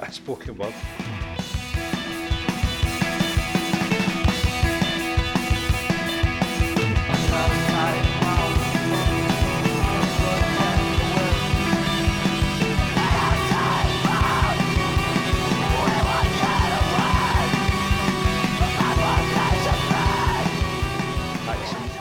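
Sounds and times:
distorted guitar riffing: 0.7 - 21.9
pounding drums: 0.7 - 21.9
Italian singer's raw screamed vocal in a screamo song: 12.7 - 17.7, 18.4 - 20.8.

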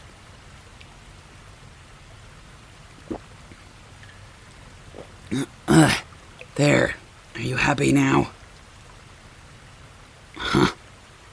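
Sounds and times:
water trickling in a cave: 0.0 - 11.3
water drips splashing in a cave: 2.9 - 7.1
speech: 5.3 - 6.0, 6.6 - 8.4.

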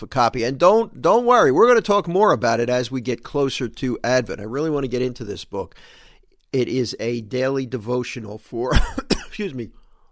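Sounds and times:
speech: 0.0 - 9.8
person coughing: 8.7 - 9.4.

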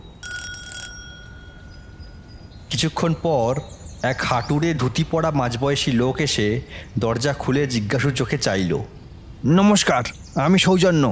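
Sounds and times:
hum: 0.0 - 11.1
doorbell mounted outside a door ringing: 0.2 - 2.4
speech: 2.7 - 11.1.

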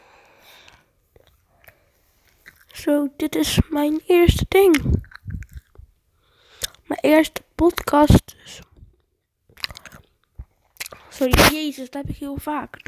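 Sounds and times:
wet chewing of gum balls: 0.6 - 2.8, 4.6 - 5.9, 6.5 - 7.0, 9.5 - 11.6
speech: 2.8 - 5.0, 7.0 - 8.7, 11.2 - 12.8.

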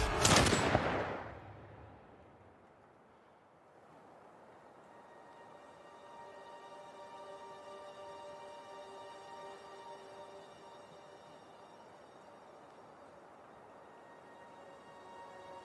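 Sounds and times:
rifle gunshot: 0.0 - 1.4
faint ringing hum: 4.4 - 15.6.

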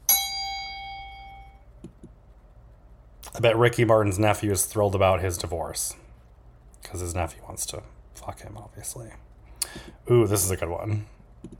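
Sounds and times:
bell ding with a long clear metallic tone: 0.0 - 1.6
speech: 3.3 - 6.0, 6.9 - 11.5.

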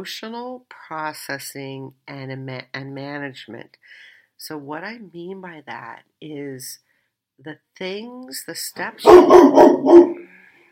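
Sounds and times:
speech: 0.0 - 6.8, 7.4 - 10.1
dog barking: 9.0 - 10.2.

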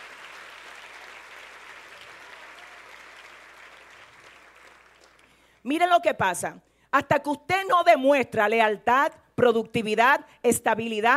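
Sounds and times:
audience applause: 0.0 - 5.4
speech: 5.6 - 11.1.

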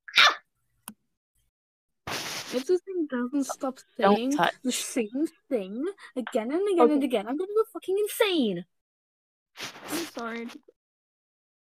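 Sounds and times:
pet puppy barking: 0.1 - 0.4
speech: 2.5 - 8.8, 9.6 - 10.7.

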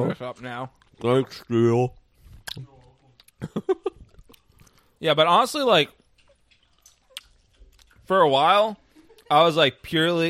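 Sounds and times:
speech: 0.0 - 2.0, 3.4 - 3.9, 5.0 - 6.0, 8.1 - 10.2
chewing taffy: 2.1 - 4.9, 5.9 - 8.1
wet mouth smacking: 2.2 - 4.8, 6.1 - 8.0.

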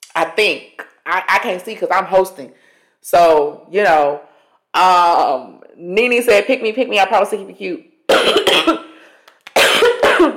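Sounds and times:
speech: 0.2 - 8.9
loud coughing from an irritated throat: 8.1 - 10.3.

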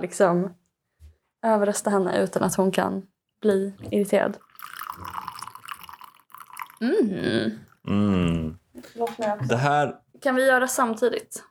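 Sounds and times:
speech: 0.0 - 0.6, 1.4 - 5.2, 6.8 - 11.4
coffee poured from a thermos into a cup: 4.2 - 6.9.

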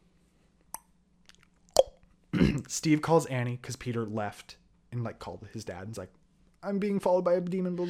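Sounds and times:
sharp wet tongue clicks: 0.7 - 2.0
speech: 2.4 - 7.8.

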